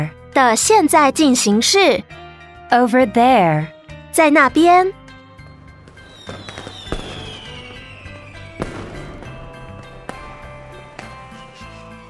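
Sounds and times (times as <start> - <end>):
speech: 0.0 - 5.0
fireworks bursting in sharp cracks and pops: 5.9 - 11.6.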